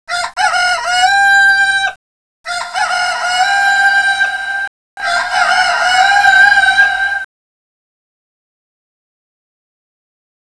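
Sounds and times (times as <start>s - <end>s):
male chicken rooster crowing cock-a-doodle-doo: 0.1s - 7.3s.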